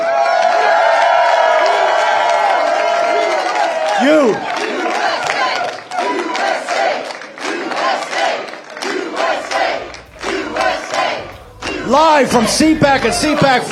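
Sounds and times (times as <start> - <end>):
large audience at CPAC cheering with shouts and whoops: 0.0 - 13.7
speech: 4.0 - 4.6, 11.9 - 13.7
scattered crowd noise with people talking: 4.0 - 13.7.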